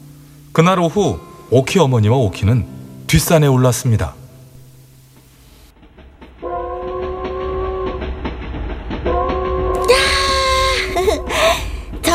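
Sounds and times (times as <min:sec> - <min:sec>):
low rumble of rolling rail traffic: 0:00.0 - 0:12.1
speech: 0:00.6 - 0:04.2
approaching train hissing and clattering: 0:02.6 - 0:12.1
train horn blasts: 0:06.4 - 0:08.3, 0:09.0 - 0:10.7.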